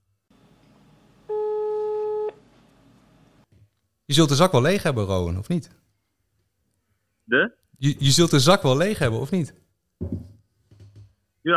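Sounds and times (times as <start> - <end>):
telephone ringing tone while calling: 1.3 - 2.4
speech: 4.1 - 5.8, 7.3 - 10.3.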